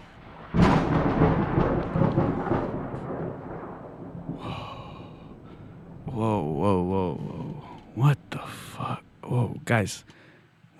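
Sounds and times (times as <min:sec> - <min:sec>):
thunder crack rolling and rumbling: 0:00.0 - 0:10.2
faint hiss: 0:02.8 - 0:10.7
speech: 0:09.7 - 0:10.2.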